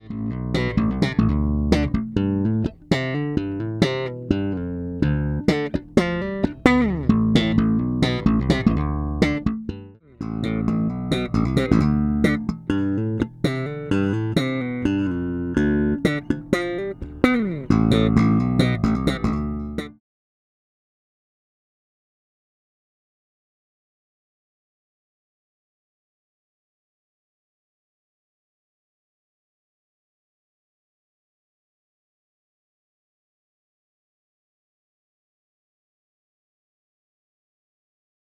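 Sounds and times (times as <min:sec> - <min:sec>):
Fodera bass guitar slap on both open strings: 0:00.0 - 0:20.0.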